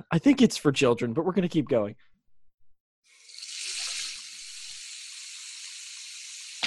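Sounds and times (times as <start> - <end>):
speech: 0.1 - 2.1
faucet running water: 3.0 - 6.6.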